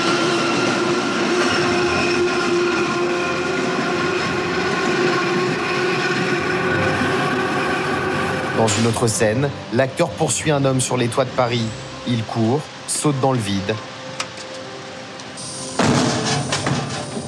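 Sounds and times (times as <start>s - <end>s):
elevated metro train crossing a bridge: 0.0s - 14.1s, 14.8s - 17.2s
speech: 8.7s - 13.9s.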